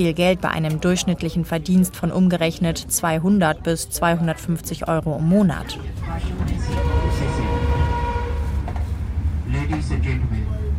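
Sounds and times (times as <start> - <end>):
speech: 0.0 - 7.6, 9.7 - 10.7
train rumbling as it slows to a stop: 6.2 - 10.7.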